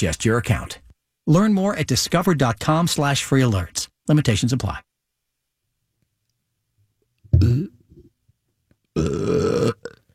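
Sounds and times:
speech: 0.0s - 4.9s, 7.4s - 7.8s, 9.0s - 10.0s
person burping: 7.3s - 8.2s, 8.9s - 10.1s.

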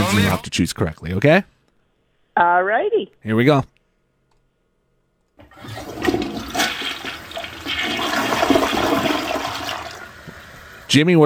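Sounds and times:
speech: 0.1s - 1.5s, 2.4s - 3.7s, 10.9s - 11.2s
toilet flushing as the bowl drains: 5.4s - 11.0s.

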